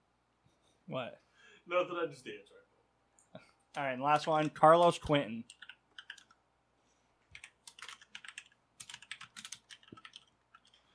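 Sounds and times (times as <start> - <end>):
speech: 0.9 - 2.7, 3.3 - 5.6
aggressive typing on clicky computer keyboard: 4.1 - 6.4, 7.3 - 10.8.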